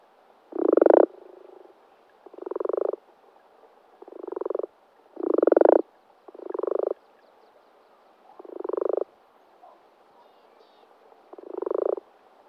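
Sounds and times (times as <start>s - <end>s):
common frog croaking in Sissonne, France: 0.5s - 3.0s, 4.0s - 7.0s, 8.4s - 9.1s, 11.3s - 12.1s.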